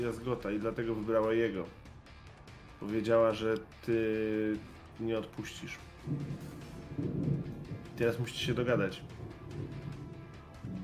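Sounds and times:
speech: 0.0s - 1.9s, 2.8s - 7.3s, 8.0s - 9.8s
thunder rumbling from an approaching storm: 6.0s - 10.8s.

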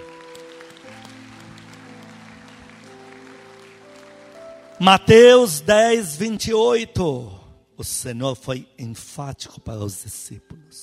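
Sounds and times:
audience applauding for God: 0.0s - 5.4s
speech: 4.8s - 10.8s.

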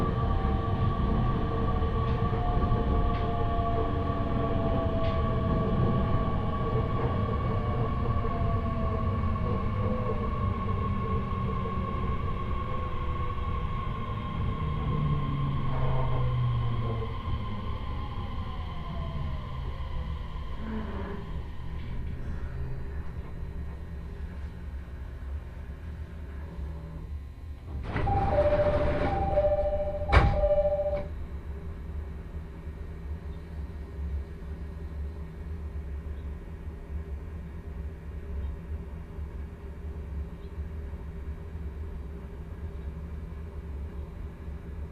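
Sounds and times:
low steady rumble inside a train car: 0.0s - 44.9s
two-tone beep: 28.1s - 31.1s.

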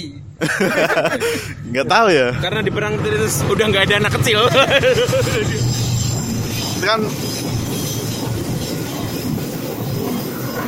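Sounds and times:
speech: 0.0s - 5.9s, 6.8s - 7.6s
laughter: 0.4s - 1.6s, 4.2s - 5.8s
PT KAI train in Indonesia rumbling past on the rails: 0.4s - 10.6s.

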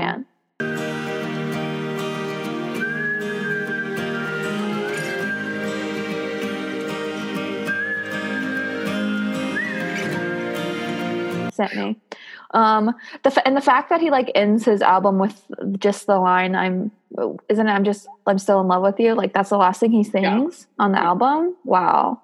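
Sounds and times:
long clear whistled notes: 0.6s - 11.5s
full musical backing of a song: 0.6s - 12.0s
speech: 11.6s - 22.2s.

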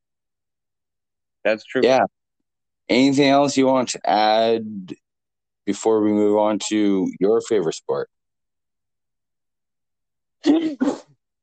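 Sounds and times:
speech: 1.4s - 2.2s, 2.9s - 5.0s, 5.6s - 8.2s, 10.4s - 11.0s
person sneezing: 10.4s - 11.2s.

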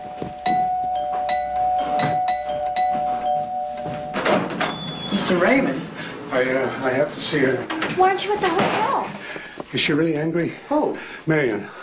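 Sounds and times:
doorbell ringing with a bright sustained chime: 0.0s - 5.6s
speech: 5.3s - 11.8s.

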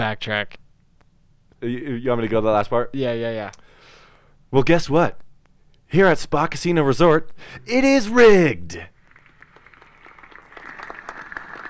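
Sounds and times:
speech: 0.0s - 0.6s, 1.6s - 3.6s, 4.5s - 5.2s, 5.9s - 8.9s
thin scattered applause from a small crowd: 9.0s - 11.6s.

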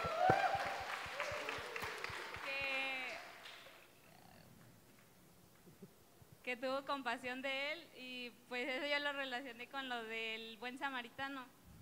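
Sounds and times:
person whooping: 0.0s - 3.2s
group applauding: 0.0s - 3.9s
speech: 6.5s - 11.6s.

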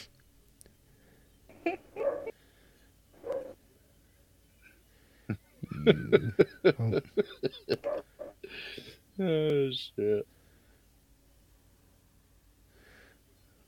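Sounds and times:
speech: 1.7s - 2.1s, 5.9s - 7.9s, 8.5s - 10.3s
dog barking and yipping: 1.9s - 2.3s, 3.2s - 3.6s, 7.8s - 8.3s
laughter: 5.6s - 8.2s.

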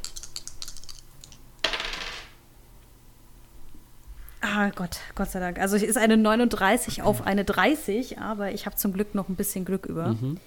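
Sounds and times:
dice tumbling across a hard table: 1.6s - 2.4s
speech: 4.6s - 10.4s.

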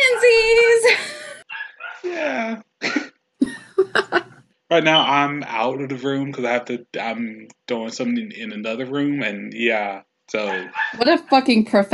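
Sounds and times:
laughter: 0.0s - 1.4s, 2.0s - 11.6s
pet-sat dog yelping and whining: 1.5s - 2.0s, 10.5s - 11.0s
speech: 4.7s - 11.9s.

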